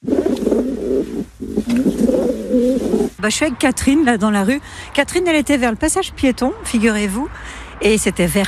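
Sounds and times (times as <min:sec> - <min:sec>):
pigeons cooing in the street: 0:00.0 - 0:03.2
speech: 0:03.2 - 0:08.4.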